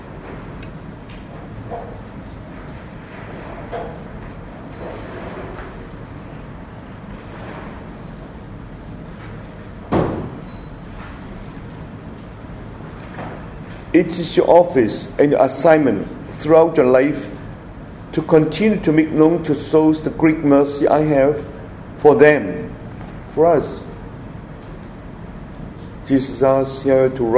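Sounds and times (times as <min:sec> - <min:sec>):
door shutting thud: 0:09.9 - 0:10.5
speech: 0:14.0 - 0:17.3, 0:18.1 - 0:22.7, 0:23.4 - 0:23.8, 0:26.1 - 0:27.3.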